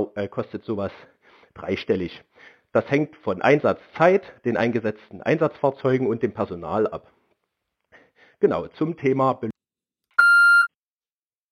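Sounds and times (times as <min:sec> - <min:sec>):
speech: 0:00.0 - 0:07.2, 0:08.4 - 0:09.5
electronic disconnect beep of a dropped phone call: 0:10.2 - 0:10.7.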